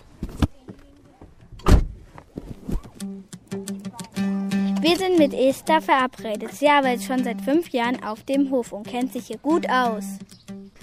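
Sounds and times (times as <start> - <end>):
car door thudding shut: 1.6 - 2.0
rustling: 2.0 - 3.1
speech: 4.8 - 10.3.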